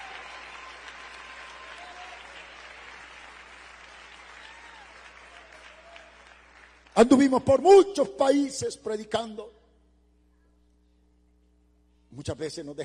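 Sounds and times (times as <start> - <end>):
faint voices and cheers: 0.0 - 2.7, 4.3 - 6.3
sustained applause from a large crowd: 0.0 - 7.0
speech: 7.0 - 9.6, 12.2 - 12.8.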